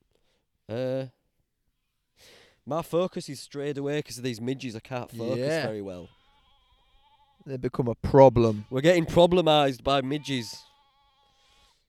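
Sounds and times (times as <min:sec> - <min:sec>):
speech: 0:00.7 - 0:01.2, 0:02.6 - 0:06.2, 0:07.4 - 0:10.7
sheep bleating across open ground: 0:05.2 - 0:11.8.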